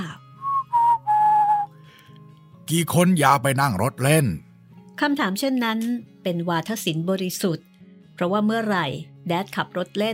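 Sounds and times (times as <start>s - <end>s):
father whistling to call his family: 0.4s - 1.8s
speech: 2.7s - 4.4s, 5.0s - 10.1s.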